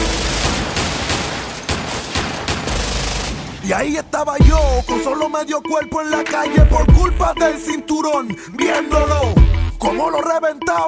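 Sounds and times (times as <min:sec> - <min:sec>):
rifle gunfire aimed at a window: 0:00.0 - 0:03.8
speech: 0:03.7 - 0:10.8.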